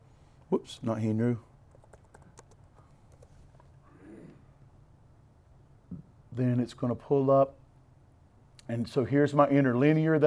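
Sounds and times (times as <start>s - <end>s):
speech: 0.5s - 1.5s, 6.4s - 7.6s, 8.7s - 10.2s
typing on a computer keyboard to enter a Hebrew search in Bible study software: 1.7s - 3.4s.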